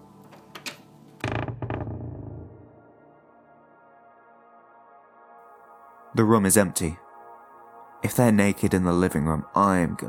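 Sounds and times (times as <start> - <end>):
door creaking as it is swung open: 0.3 - 3.0
speech: 6.2 - 7.0, 8.0 - 10.0.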